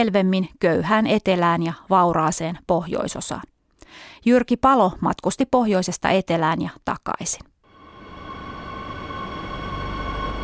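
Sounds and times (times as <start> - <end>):
speech: 0.0 - 7.5
faint sustained whine of a metro train: 7.7 - 10.4
southbound Madrid metro train rumbling: 7.7 - 10.4.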